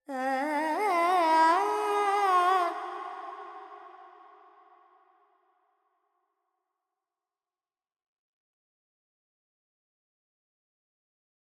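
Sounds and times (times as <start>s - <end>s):
Carnatic female vocal alaps: 0.0s - 4.5s.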